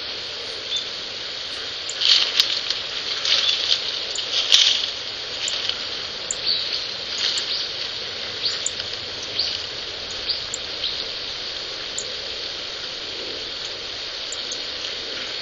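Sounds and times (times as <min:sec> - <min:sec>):
steady hissing background noise: 0:00.0 - 0:15.4
Rustic bunting calling in the evening after roosting: 0:01.5 - 0:02.5, 0:03.3 - 0:04.8, 0:05.4 - 0:07.8, 0:08.4 - 0:11.2, 0:13.6 - 0:14.9.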